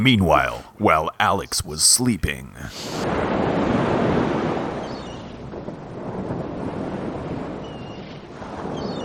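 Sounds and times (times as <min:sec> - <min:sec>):
speech: 0:00.0 - 0:03.8
ocean waves heard aboard a ship: 0:00.0 - 0:09.0
rushing wind heard aboard a ship: 0:02.6 - 0:09.0.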